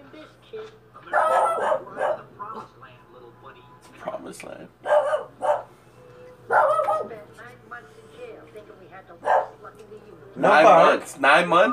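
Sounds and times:
dog barking: 0:01.1 - 0:02.3, 0:04.8 - 0:05.7, 0:06.5 - 0:07.2, 0:09.2 - 0:09.6
speech: 0:04.3 - 0:04.9, 0:08.9 - 0:11.7.

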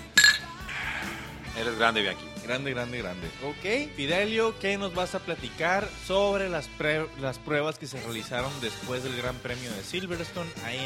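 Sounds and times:
glasses clinking together in a toast: 0:00.0 - 0:00.7
speech: 0:01.6 - 0:10.8.

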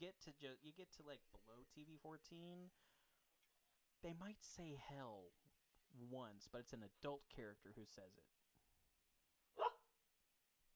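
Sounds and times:
speech: 0:00.0 - 0:02.9, 0:04.0 - 0:08.4
dog barking: 0:09.5 - 0:09.9.

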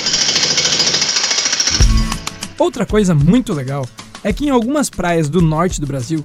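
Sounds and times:
jackhammer breaking asphalt: 0:00.0 - 0:02.1
heavy low thud of jackhammer striking and stopping: 0:01.7 - 0:03.5
speech: 0:02.6 - 0:06.2.

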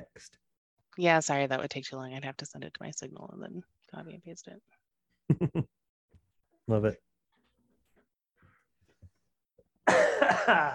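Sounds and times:
speech: 0:00.2 - 0:00.4, 0:01.0 - 0:05.8, 0:06.7 - 0:07.1, 0:10.3 - 0:10.7
person coughing: 0:09.8 - 0:10.7.

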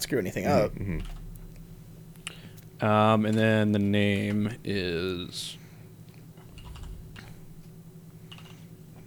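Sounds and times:
steady low hum: 0:00.0 - 0:09.0
speech: 0:00.1 - 0:01.2, 0:02.8 - 0:05.6
soft typing on a computer keyboard: 0:06.6 - 0:07.3, 0:08.3 - 0:08.6.

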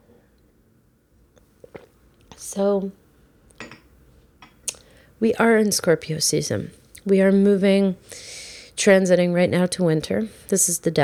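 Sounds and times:
person sipping water: 0:01.4 - 0:02.4
small swallow: 0:01.6 - 0:02.0
soft wet mouth clicks: 0:01.6 - 0:02.4, 0:04.7 - 0:04.9
speech: 0:02.4 - 0:03.0, 0:05.2 - 0:11.0.

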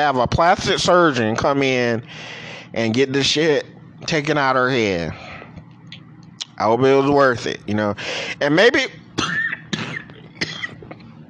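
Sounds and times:
speech: 0:00.0 - 0:05.2, 0:06.6 - 0:09.0
person coughing with phlegm in the throat: 0:09.2 - 0:10.9.

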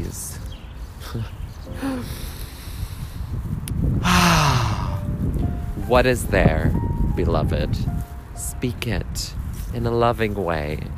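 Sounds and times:
speech: 0:01.1 - 0:02.2, 0:05.9 - 0:08.0, 0:08.6 - 0:10.9
voiced sighing exhale: 0:01.7 - 0:03.4, 0:04.0 - 0:05.1
deep breathing in and out during a guided breathing exercise: 0:01.7 - 0:05.1.

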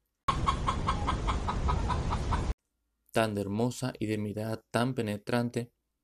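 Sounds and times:
hen clucking: 0:00.3 - 0:02.5
speech: 0:03.2 - 0:05.8.

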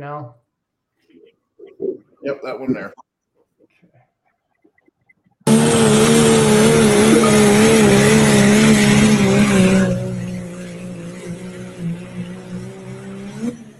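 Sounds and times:
speech: 0:00.0 - 0:00.4, 0:02.2 - 0:03.1
diesel truck engine roaring to life: 0:05.5 - 0:13.7.

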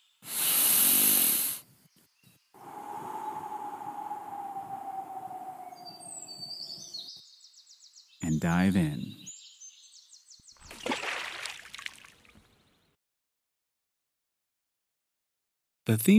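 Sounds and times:
long loud airy deep breath drawn in: 0:00.2 - 0:01.6, 0:02.6 - 0:05.8
faint bird chirps: 0:01.7 - 0:10.7
steady low hum: 0:02.6 - 0:06.5
speech: 0:08.4 - 0:09.2, 0:15.9 - 0:16.1.

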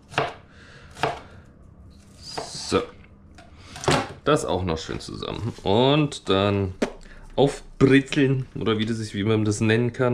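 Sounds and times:
knife chopping food on a board while preparing a Flammkuchen: 0:00.0 - 0:00.4, 0:01.0 - 0:01.2
speech: 0:02.7 - 0:03.0, 0:04.2 - 0:06.8, 0:07.4 - 0:10.1.

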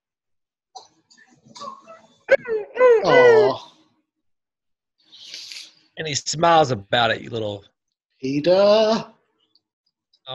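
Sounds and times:
speech: 0:01.6 - 0:03.6, 0:06.0 - 0:09.2
dog whimpering and wailing in a movie scene: 0:01.6 - 0:03.7.

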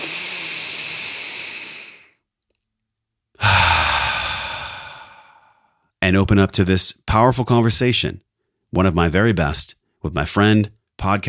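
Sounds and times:
slow deep breath: 0:00.0 - 0:02.2, 0:03.4 - 0:05.9
speech: 0:06.1 - 0:11.2.

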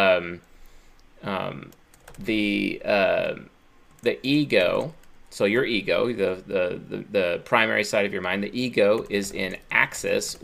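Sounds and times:
speech: 0:00.2 - 0:00.5, 0:01.2 - 0:10.4
keyboard typing: 0:01.6 - 0:02.5, 0:03.8 - 0:05.4, 0:08.8 - 0:10.4.

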